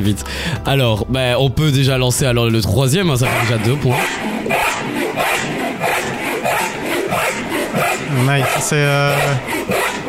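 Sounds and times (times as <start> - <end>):
speech: 0.0 - 4.6, 8.2 - 9.8
hand saw cutting through wood: 2.8 - 10.0.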